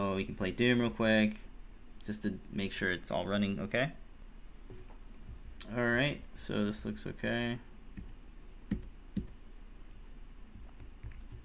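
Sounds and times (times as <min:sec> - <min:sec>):
speech: 0:00.2 - 0:04.0, 0:05.6 - 0:07.7
keys pressed on chiclet computer keyboard: 0:08.7 - 0:09.4, 0:10.6 - 0:11.4.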